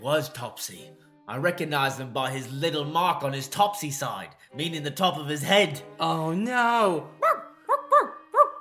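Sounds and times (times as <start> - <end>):
speech: 0.0 - 7.2
dog giving short whiny barks with whimpering tone: 7.2 - 8.5.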